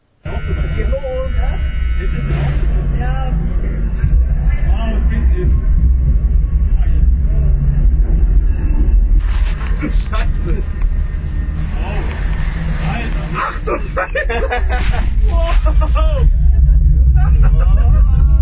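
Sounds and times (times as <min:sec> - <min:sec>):
roller coaster in motion recorded on board: 0:00.3 - 0:18.4
speech: 0:02.0 - 0:04.1
laughter: 0:13.2 - 0:18.4
voices shouting and whooping on a roller coaster: 0:15.1 - 0:18.4.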